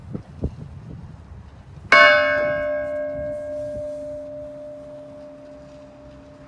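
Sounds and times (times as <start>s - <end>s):
castle bell ringing: 2.0s - 6.4s.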